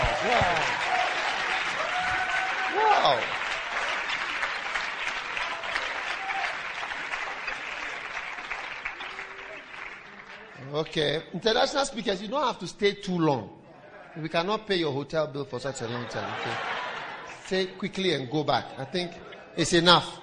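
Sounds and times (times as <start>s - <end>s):
crowd applauding in a reverberant hall in church: 0.0s - 11.3s, 15.9s - 18.2s
speech: 10.8s - 13.6s, 14.2s - 16.8s, 17.5s - 20.2s
laughter: 15.6s - 19.6s.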